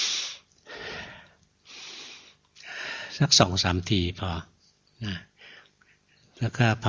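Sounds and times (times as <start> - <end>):
forceful deliberate breaths drawn hard through the nose: 0.0 - 3.0
speech: 3.2 - 5.3, 6.4 - 6.8.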